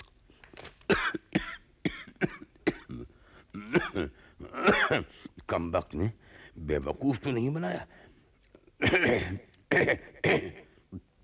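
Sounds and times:
person coughing: 0:00.9 - 0:05.1, 0:08.8 - 0:10.7
throat clearing: 0:00.9 - 0:05.1, 0:08.8 - 0:10.7
speech: 0:04.9 - 0:08.0, 0:08.8 - 0:10.5.

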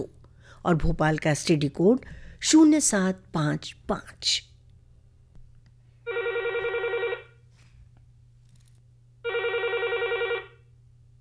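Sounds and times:
speech: 0:00.0 - 0:04.5
low steady hum: 0:00.0 - 0:11.2
telephone ringing in warbling bursts: 0:06.0 - 0:07.4, 0:09.2 - 0:10.7.

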